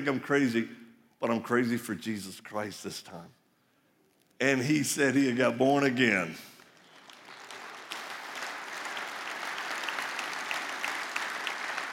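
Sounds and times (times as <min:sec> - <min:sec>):
speech: 0:00.0 - 0:03.4, 0:04.4 - 0:06.5
crowd applauding: 0:06.5 - 0:11.9.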